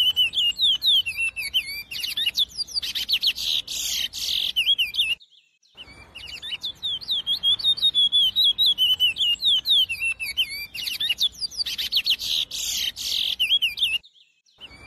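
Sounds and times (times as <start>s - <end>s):
chestnut-bellied seed finch Sporophila angolensis song: 0.0s - 14.8s.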